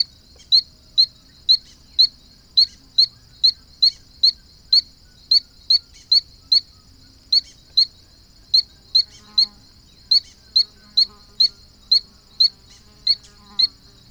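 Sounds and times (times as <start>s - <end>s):
Ameerega berohoka calling: 0.0s - 13.8s.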